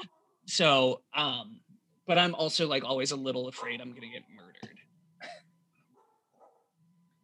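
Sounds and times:
speech: 0:00.0 - 0:05.4
dog barking: 0:05.9 - 0:06.8.

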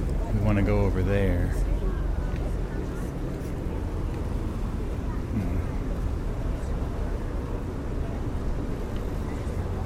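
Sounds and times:
small canoe-like boat engine rumble on a canal: 0:00.0 - 0:09.8
speech: 0:00.5 - 0:01.7.

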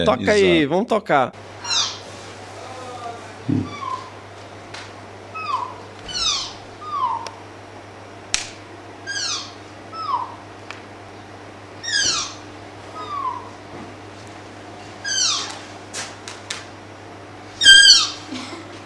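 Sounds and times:
speech: 0:00.0 - 0:01.5
faint steady hum: 0:00.0 - 0:18.8
tapir whistling calls: 0:01.6 - 0:02.8, 0:03.5 - 0:04.2, 0:05.3 - 0:07.4, 0:09.0 - 0:10.4, 0:11.8 - 0:13.6, 0:15.0 - 0:15.6, 0:17.6 - 0:18.3.

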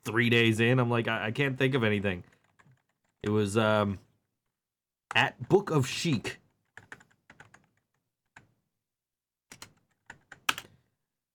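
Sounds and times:
speech: 0:00.0 - 0:02.4, 0:03.2 - 0:04.1, 0:05.1 - 0:06.4
typing on a computer keyboard: 0:02.2 - 0:03.2, 0:06.5 - 0:08.5, 0:09.5 - 0:10.8.

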